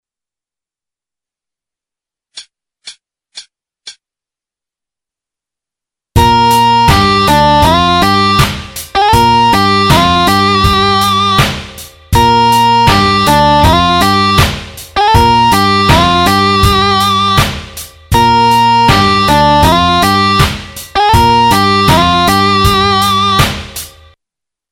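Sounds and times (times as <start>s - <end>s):
blues riff in G: 6.2s - 24.2s.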